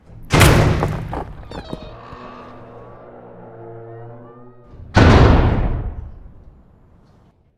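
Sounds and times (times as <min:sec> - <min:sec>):
door unhinging: 0:00.1 - 0:02.4.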